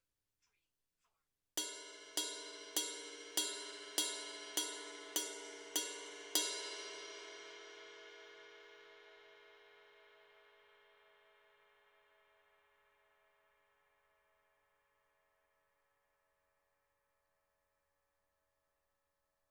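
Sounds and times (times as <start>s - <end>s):
ride cymbal bell: 1.6s - 9.5s.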